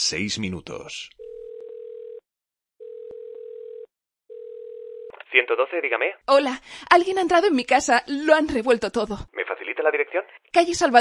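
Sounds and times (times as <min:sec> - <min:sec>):
speech: 0:00.0 - 0:01.2, 0:05.3 - 0:10.9
emergency telephone line ringing tone: 0:01.2 - 0:02.2, 0:02.8 - 0:05.1.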